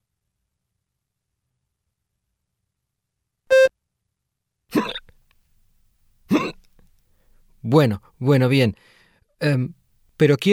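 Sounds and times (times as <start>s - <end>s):
person hiccuping: 4.7s - 5.1s, 6.3s - 6.7s
speech: 7.7s - 10.5s.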